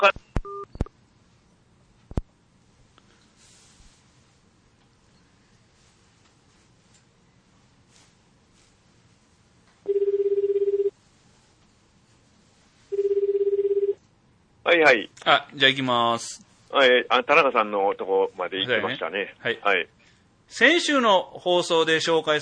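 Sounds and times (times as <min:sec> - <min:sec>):
telephone dialing beeps: 0:00.0 - 0:00.9
telephone electronic ring tones: 0:09.9 - 0:10.9, 0:12.9 - 0:14.0
speech: 0:14.8 - 0:22.3.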